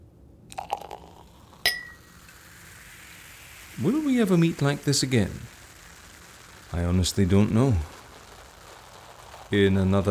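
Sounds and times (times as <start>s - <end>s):
Veuve Clicquot champagne fizzing and splashing: 0.5s - 10.0s
champagne glasses clinking in a toast at night: 1.6s - 2.1s
speech: 3.8s - 5.6s, 6.7s - 8.0s, 9.5s - 10.0s.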